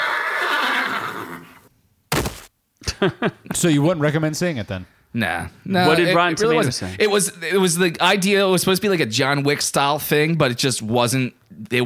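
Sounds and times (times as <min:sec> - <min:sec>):
horse whinnying: 0:00.0 - 0:01.7
speech: 0:03.0 - 0:11.8.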